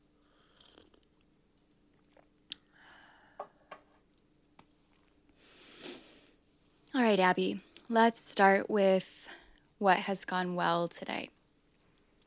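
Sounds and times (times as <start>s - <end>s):
person sipping tea: 0.2s - 4.1s
speech: 7.0s - 9.2s, 9.8s - 11.4s.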